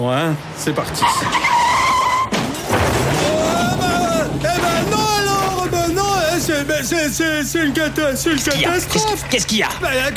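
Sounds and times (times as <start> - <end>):
speech: 0.0 - 1.6, 6.5 - 10.1
voice-imitated car crash: 0.6 - 6.4
voice imitating high-pitched tire-skid screeches: 0.8 - 2.4.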